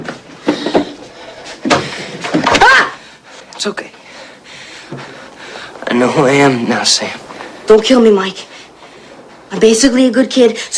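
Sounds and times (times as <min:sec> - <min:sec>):
clattering knocks and bumps: 0:00.0 - 0:02.7
speech: 0:03.6 - 0:03.9, 0:06.0 - 0:08.5, 0:09.5 - 0:10.7.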